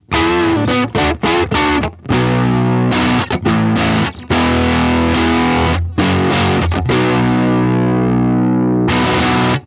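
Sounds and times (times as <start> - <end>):
distorted Stratocaster electric guitar on middle pickup: 0.0 - 9.6.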